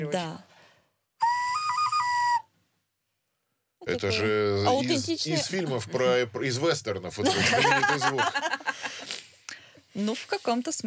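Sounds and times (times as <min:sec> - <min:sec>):
speech: 0:00.0 - 0:00.5, 0:03.9 - 0:08.7, 0:10.0 - 0:10.8
traditional clay folk whistle from the Urals being blown: 0:01.2 - 0:02.6
laughter: 0:07.2 - 0:09.2.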